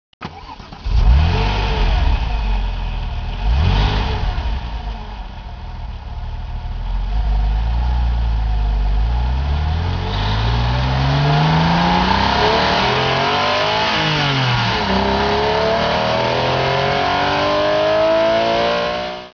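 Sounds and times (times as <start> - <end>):
Porsche GT3 accelerating heard on board: 0.8 - 19.3.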